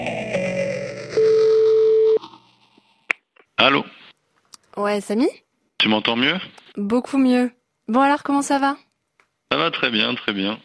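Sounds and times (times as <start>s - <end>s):
telephone ringing tone on an outgoing call: 0.3s - 2.2s
speech: 3.6s - 3.9s, 4.8s - 8.8s, 9.5s - 10.6s.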